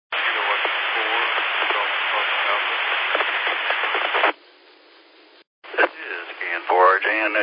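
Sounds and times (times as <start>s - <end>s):
faint voice of calling station on amateur radio net: 0.1s - 4.3s, 5.7s - 7.4s.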